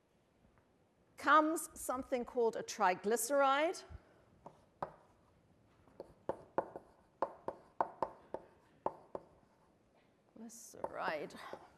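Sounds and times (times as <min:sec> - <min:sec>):
speech: 0:01.2 - 0:04.0, 0:11.0 - 0:11.7
writing strokes on a board drawing a line and molecular structures: 0:04.4 - 0:05.3, 0:05.9 - 0:09.8, 0:11.5 - 0:11.7.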